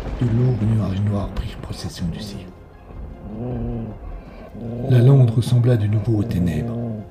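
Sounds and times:
speech: 0.2 - 2.6, 3.3 - 7.1
dog on a moor growling: 3.2 - 7.1.

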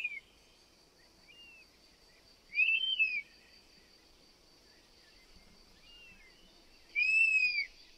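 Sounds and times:
European honey buzzard whistling call: 2.6 - 3.2, 7.0 - 7.7.

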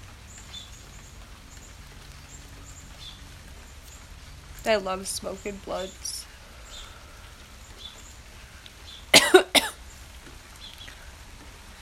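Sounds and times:
speech: 4.7 - 6.1
coughing: 9.1 - 9.8.

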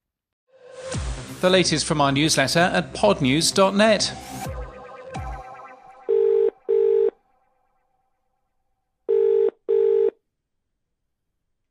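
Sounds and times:
speech: 1.4 - 4.5
telephone ringing in classic double-burst pattern: 6.1 - 7.2, 9.1 - 10.2.

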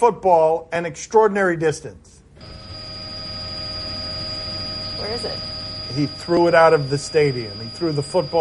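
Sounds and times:
speech: 0.0 - 2.6, 5.0 - 8.4
news helicopter engine and rotor noise: 2.4 - 8.4.

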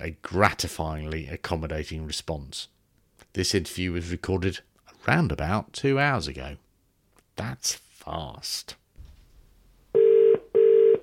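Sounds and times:
speech: 0.0 - 6.6, 7.4 - 8.8
electronic telephone line ringing tone: 10.0 - 11.0.

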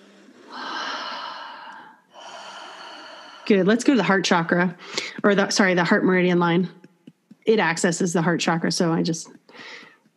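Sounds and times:
person taking a deep breath in and out: 0.0 - 3.8
speech: 3.5 - 6.8, 7.4 - 9.9.

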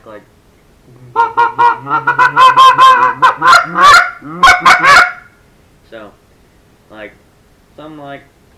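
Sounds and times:
speech: 0.0 - 4.9, 7.8 - 8.4
goose call blown in a feeding chuckle: 1.1 - 5.2.

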